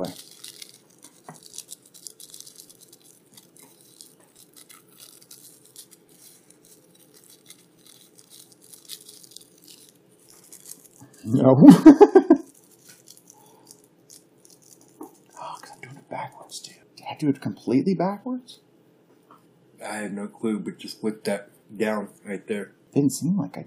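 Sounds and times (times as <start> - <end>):
speech: 0.0 - 0.3, 11.2 - 12.1, 17.2 - 18.6, 20.0 - 23.6
thin rolling paper crinkling and ripping while being handled: 0.0 - 11.3, 11.9 - 16.6
laughter: 11.5 - 12.4.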